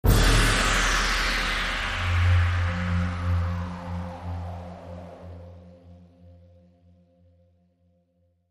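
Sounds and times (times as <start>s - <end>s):
impact sting: 0.0s - 6.4s
drone: 0.0s - 7.2s.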